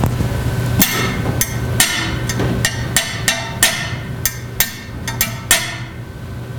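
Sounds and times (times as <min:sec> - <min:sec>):
tapping glass: 0:00.8 - 0:06.0.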